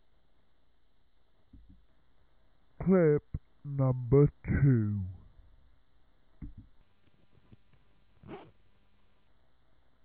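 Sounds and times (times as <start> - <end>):
soft hiss: 0.0 - 10.0
speech: 2.9 - 5.1
zipper being pulled: 8.2 - 8.6.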